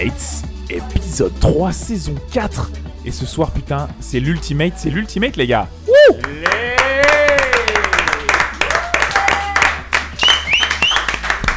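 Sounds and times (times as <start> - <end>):
speech: 0.0 - 6.4
excited voices talking and calling out: 5.9 - 11.3
small live audience of four people clapping: 6.1 - 11.5.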